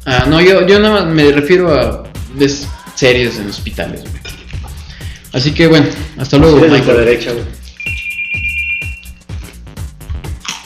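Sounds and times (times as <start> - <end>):
speech: 0.0 - 4.4, 5.3 - 7.6
telephone ringing: 7.8 - 9.2.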